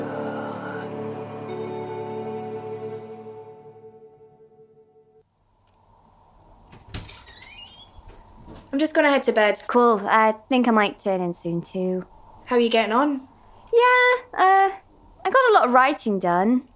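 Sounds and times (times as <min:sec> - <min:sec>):
heavy fire door creaking open: 0:06.7 - 0:08.7
speech: 0:08.7 - 0:16.7.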